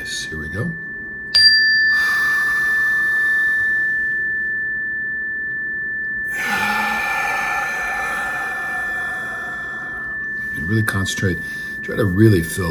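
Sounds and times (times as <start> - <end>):
sustained ringing chime tone: 0.0 - 12.7
full exhale through the mouth during a guided breathing exercise: 1.9 - 4.5, 6.3 - 10.7
slow breath in during a guided breathing exercise: 1.9 - 4.5, 6.3 - 10.8, 11.4 - 11.9
speech: 10.8 - 12.7.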